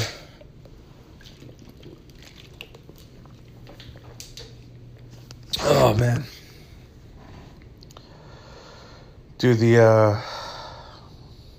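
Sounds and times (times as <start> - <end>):
person drinking water with sips and swallows: 0.0 - 5.9
steady low hum: 0.0 - 11.5
speech: 5.6 - 6.3, 9.4 - 10.3.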